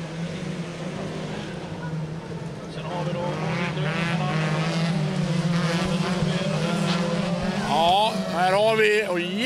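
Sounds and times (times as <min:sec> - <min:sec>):
folkrace car engines droning on a track: 0:00.0 - 0:09.4
speech: 0:08.5 - 0:09.4.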